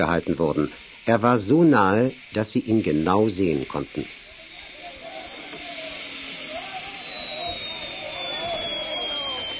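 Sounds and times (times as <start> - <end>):
speech: 0.0 - 4.2
helicopter landing with turbine roar and whine: 0.0 - 9.5.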